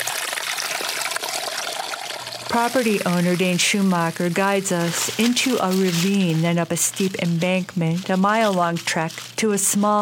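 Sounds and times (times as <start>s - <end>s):
spring water trickling from a pipe: 0.0s - 5.4s
speech: 2.5s - 9.9s.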